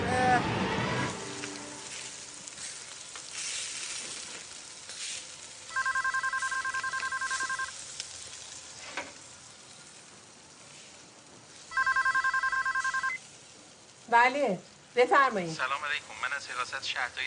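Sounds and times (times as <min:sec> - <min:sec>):
steady sizzling hiss: 0:01.1 - 0:17.2
telephone ringing with an electronic trill: 0:05.7 - 0:07.8, 0:11.7 - 0:13.2
speech: 0:14.1 - 0:17.2.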